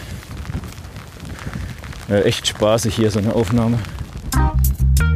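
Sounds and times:
strong wind buffeting the microphone: 0.0s - 5.0s
speech: 2.1s - 4.0s.

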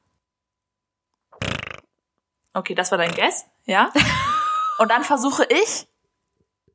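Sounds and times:
voice imitating a fart: 1.3s - 2.0s, 2.8s - 3.5s
speech: 2.6s - 4.2s, 4.8s - 5.9s
laughter: 4.0s - 5.0s.

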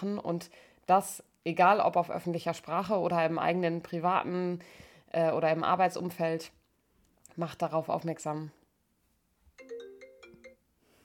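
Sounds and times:
speech: 0.0s - 6.6s, 7.4s - 8.6s
phone ringtone with a bright electronic melody: 9.6s - 10.7s.

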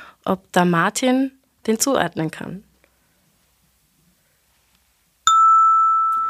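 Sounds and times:
speech: 0.2s - 2.7s
glockenspiel note E struck: 5.3s - 6.2s.

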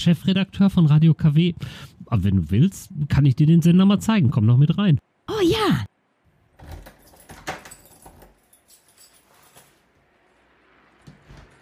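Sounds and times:
speech: 0.0s - 5.9s
radio station door being handled: 6.6s - 8.4s
lock turning on a door: 6.6s - 8.9s
keys jangling: 6.6s - 9.9s.

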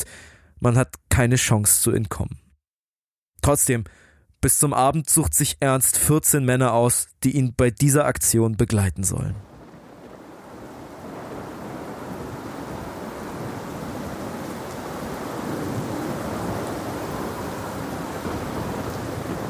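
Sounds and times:
speech: 0.0s - 2.4s, 3.4s - 9.5s
heavy rain pouring onto a trench: 9.4s - 19.4s
rainwater running down trench slopes: 9.4s - 19.4s.

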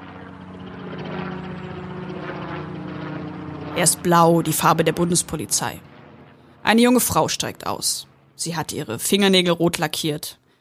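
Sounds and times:
landing helicopter rotor chopping: 0.0s - 10.5s
speech: 3.8s - 5.9s, 6.6s - 10.4s.

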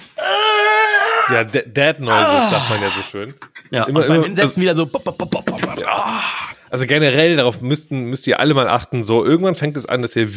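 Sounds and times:
voice imitating a groan made when bending down: 0.2s - 1.4s, 2.1s - 3.2s, 5.7s - 6.6s
speech: 1.3s - 10.3s.

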